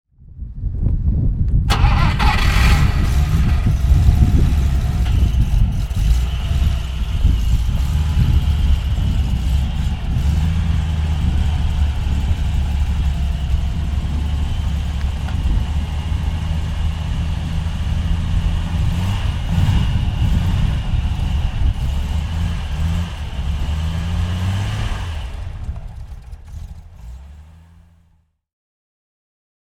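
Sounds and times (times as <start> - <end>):
BMW 501 Baur idling: 1.7 - 28.2.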